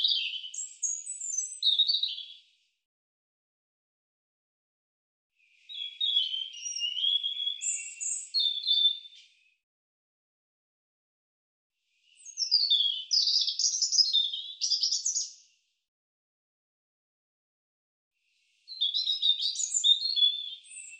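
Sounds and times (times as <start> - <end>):
European robin song: 0.0 - 2.5, 5.4 - 9.4, 12.0 - 15.5, 18.3 - 20.9.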